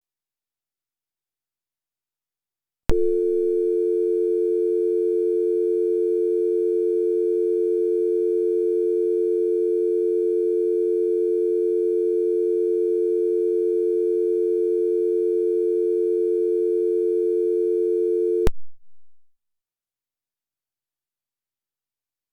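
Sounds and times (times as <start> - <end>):
dial tone: 2.9 - 18.5.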